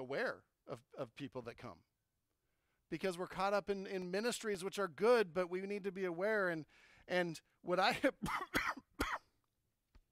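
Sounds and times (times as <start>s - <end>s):
speech: 0.0s - 1.9s, 2.9s - 8.7s
person coughing: 8.0s - 9.4s.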